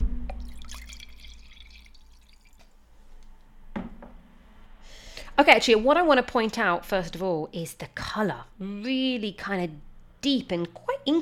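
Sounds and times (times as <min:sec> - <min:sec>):
dripping splashes of wine: 0:00.3 - 0:02.7
wine pouring into a glass: 0:00.3 - 0:02.7
speech: 0:05.4 - 0:11.2.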